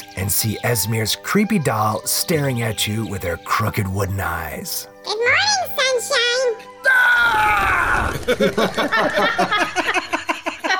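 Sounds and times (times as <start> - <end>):
speech: 0.3 - 5.6, 8.3 - 9.8
person screaming in fright: 6.8 - 8.2
laughter: 7.9 - 10.7.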